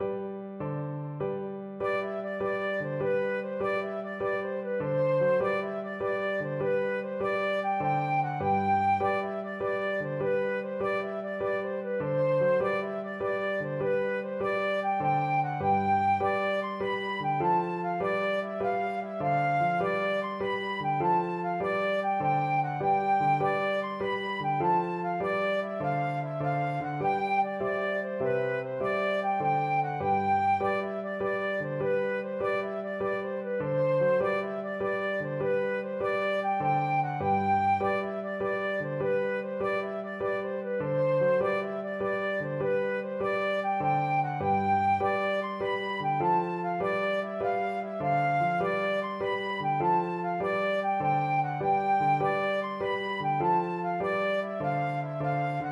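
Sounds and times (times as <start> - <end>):
flute playing a jig: 0.0 - 55.7.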